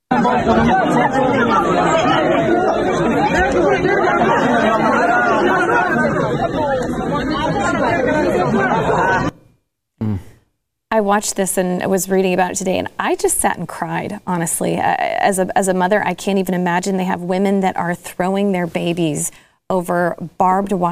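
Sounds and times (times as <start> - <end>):
dense crowd at the airport in Kabul chattering and shouting: 0.1 - 9.4
speech: 0.2 - 4.8, 11.0 - 20.9.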